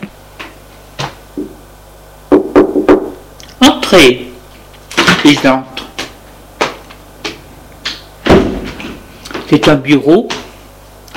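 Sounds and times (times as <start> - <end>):
sharp raps on the door of a management secretariat office: 2.3 - 3.2
speech: 3.9 - 4.3, 5.3 - 5.7, 9.5 - 10.4.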